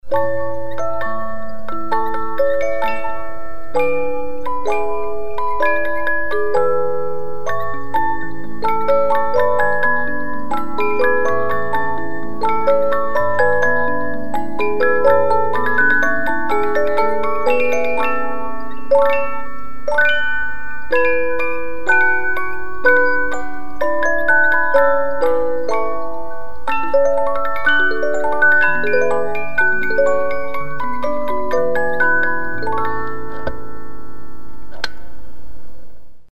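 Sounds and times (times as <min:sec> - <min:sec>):
classical piece allegro movement: 0:00.0 - 0:34.9.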